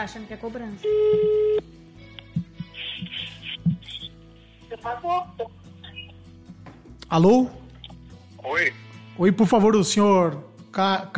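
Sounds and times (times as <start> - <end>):
speech: 0.0 - 1.8, 4.7 - 5.6, 7.1 - 7.6, 8.4 - 11.1
telephone busy tone after a call is hung up: 0.8 - 1.6.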